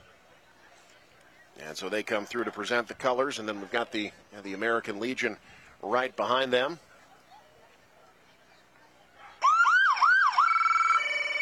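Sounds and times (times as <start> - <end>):
speech: 1.7 - 6.9
emergency vehicle siren whooping and wailing: 9.4 - 11.4.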